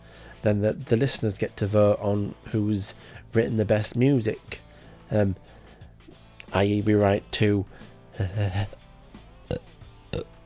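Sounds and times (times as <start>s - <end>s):
speech: 0.4s - 5.6s, 6.5s - 8.8s, 9.5s - 10.3s
loud low croaky burp: 9.5s - 10.4s.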